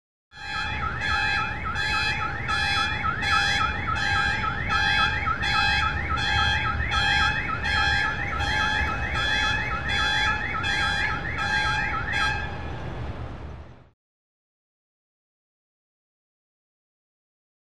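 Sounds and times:
medium car alarm: 0.3s - 12.6s.

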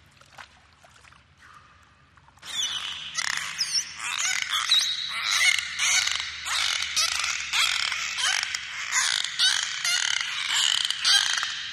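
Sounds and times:
dolphin squeals and whistles: 2.4s - 11.7s.

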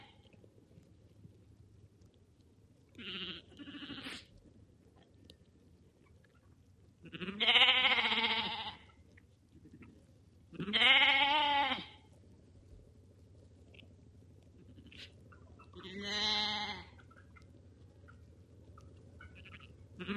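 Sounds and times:
low steady background hum: 0.0s - 20.1s
lambs bleating: 3.0s - 4.3s, 7.0s - 8.9s, 10.5s - 12.0s, 15.8s - 16.9s, 19.2s - 20.1s.

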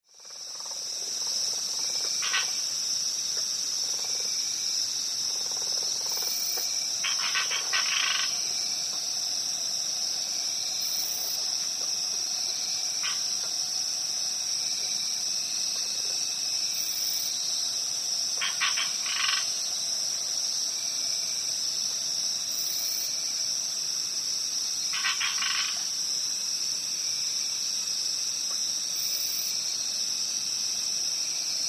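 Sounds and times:
crickets chirping at a pond: 0.0s - 31.6s.

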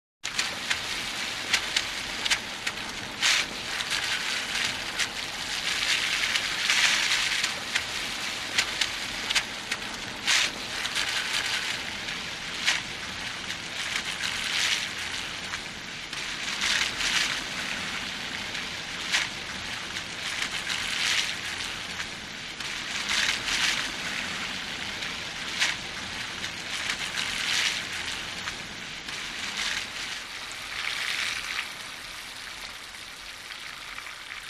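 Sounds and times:
tires on wet surface: 0.2s - 34.4s.

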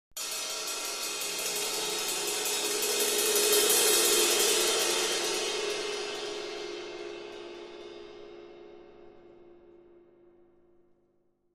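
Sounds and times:
cymbal crescendo: 0.2s - 9.3s.

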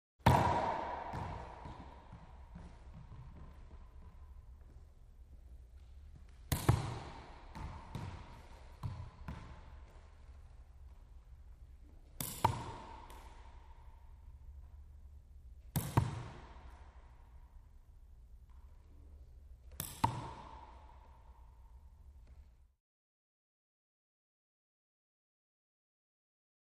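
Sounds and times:
racquetball being hit: 0.2s - 4.8s, 5.7s - 14.9s, 15.6s - 17.4s, 19.6s - 22.5s.

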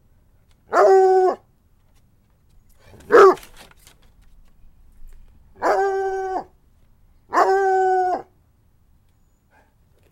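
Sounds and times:
dog howling: 0.7s - 1.4s, 3.0s - 3.4s, 5.6s - 6.6s, 7.3s - 8.3s.

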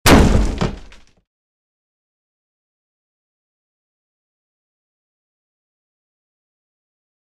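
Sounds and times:
heavy wood door impact from kicking: 0.0s - 1.1s
debris falling: 0.0s - 1.2s.

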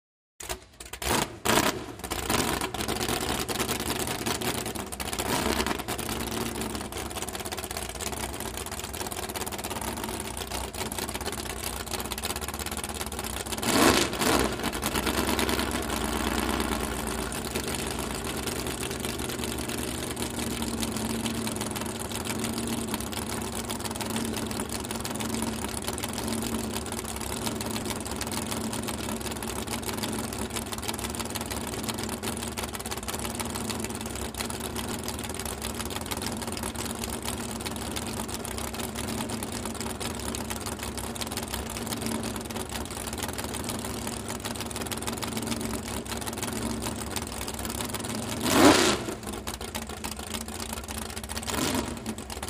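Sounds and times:
drag boat engine starting and idling: 0.4s - 52.4s.

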